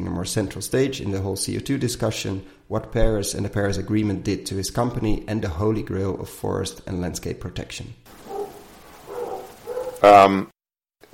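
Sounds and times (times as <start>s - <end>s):
speech: 0.2s - 8.2s, 10.0s - 10.5s
dog barking: 8.1s - 10.1s.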